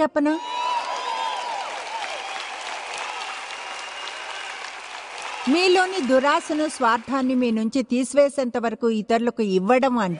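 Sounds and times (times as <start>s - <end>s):
speech: 0.0s - 0.6s, 5.5s - 10.1s
audience applauding: 0.5s - 7.6s.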